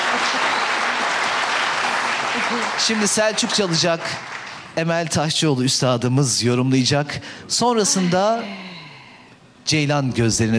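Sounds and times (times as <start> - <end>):
audience applauding at a live folk music performance: 0.0 - 4.8
speech: 2.5 - 8.8, 9.6 - 10.5.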